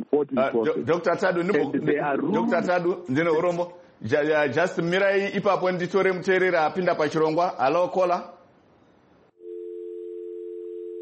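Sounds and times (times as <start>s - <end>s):
speech: 0.0s - 8.4s
telephone dial tone after a caller's line drops: 9.4s - 10.9s.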